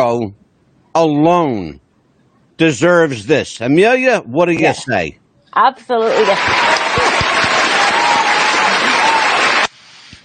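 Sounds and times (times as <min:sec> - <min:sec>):
speech: 0:00.0 - 0:00.4, 0:01.0 - 0:01.8, 0:02.6 - 0:06.8
canned crowd applause: 0:06.1 - 0:09.7
scattered cheers: 0:06.2 - 0:09.7.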